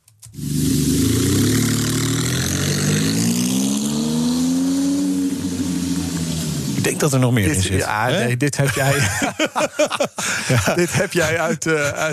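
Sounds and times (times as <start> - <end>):
Maserati sports car engine starting and revving: 0.3 - 7.8
speech: 7.0 - 12.1
laughter: 7.8 - 12.1.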